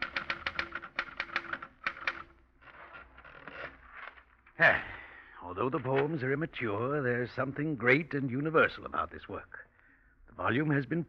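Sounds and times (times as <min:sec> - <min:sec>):
rapid sharp typewriter keystrokes: 0:00.0 - 0:02.3
softer dense mechanical rattle: 0:00.0 - 0:03.8
speech: 0:04.6 - 0:09.7, 0:10.4 - 0:11.0.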